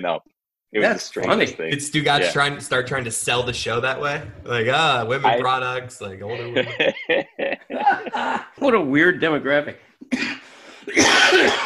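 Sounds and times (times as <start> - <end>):
speech: 0.0 - 11.6
laughter: 6.2 - 8.6
person coughing harshly: 10.1 - 11.6.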